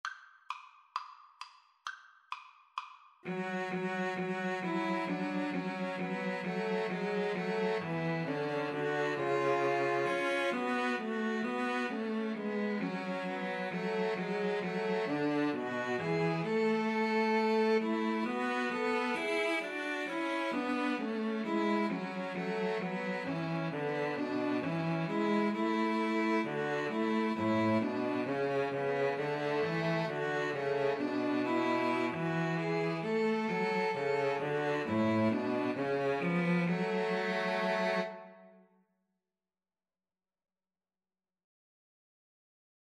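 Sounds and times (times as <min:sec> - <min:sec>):
two violins and cello playing: 0:03.3 - 0:38.3.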